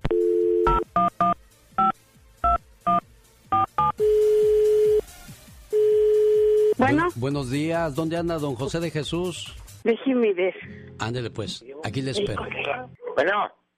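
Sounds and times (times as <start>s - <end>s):
steady phone tone: 0.0s - 5.1s, 5.7s - 6.8s
speech: 6.9s - 13.6s.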